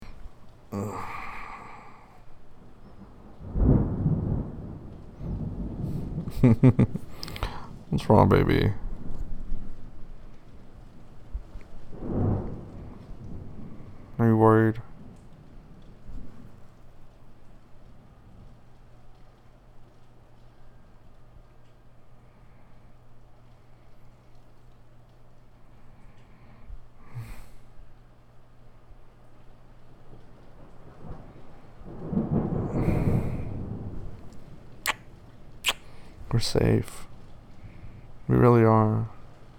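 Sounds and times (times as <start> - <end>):
rain in a thunderstorm: 0.0 - 39.5
thunder rumbling: 0.0 - 39.5
wind in a thunderstorm: 0.0 - 39.5
sharp thunder crack: 2.6 - 10.3, 11.3 - 16.7, 30.8 - 35.2
speech: 6.4 - 7.1, 7.9 - 8.8, 36.5 - 37.0.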